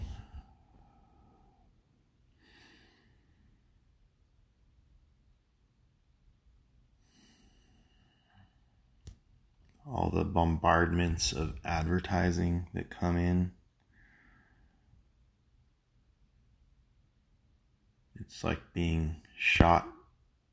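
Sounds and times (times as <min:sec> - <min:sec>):
slow deep breathing in a breathing exercise: 0:00.0 - 0:03.8, 0:07.0 - 0:08.9, 0:13.8 - 0:15.0
speech: 0:09.9 - 0:13.6, 0:18.3 - 0:20.0.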